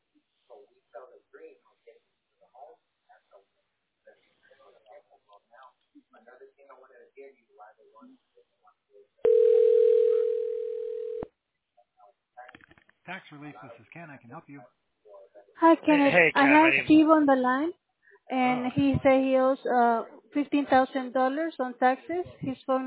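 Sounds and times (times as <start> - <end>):
telephone line dialing tone: 9.3 - 11.3
speech: 12.4 - 14.8, 15.4 - 22.8.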